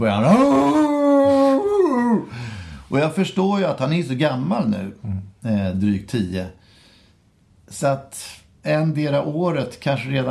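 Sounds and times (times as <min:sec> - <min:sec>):
speech: 0:00.0 - 0:00.6, 0:02.9 - 0:06.6, 0:07.7 - 0:10.3
person imitating the howl of their dog: 0:00.2 - 0:02.3.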